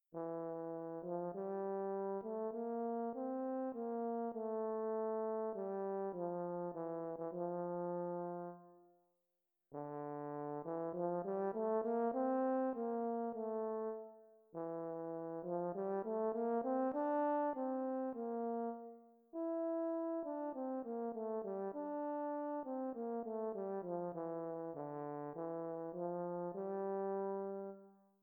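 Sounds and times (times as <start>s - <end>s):
fast horn: 0.1s - 8.8s, 9.7s - 28.0s.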